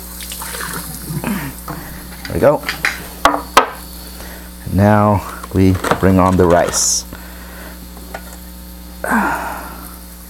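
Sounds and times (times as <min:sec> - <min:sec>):
water running from a tap to dampen an oke: 0:00.0 - 0:02.6
speech: 0:02.3 - 0:02.8, 0:04.8 - 0:07.1.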